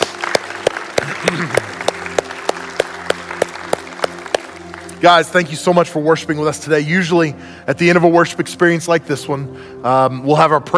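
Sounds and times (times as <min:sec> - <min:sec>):
audience clapping in a steady even beat: 0:00.0 - 0:05.0
sustained musical tones: 0:00.0 - 0:07.4
speech: 0:05.0 - 0:10.7.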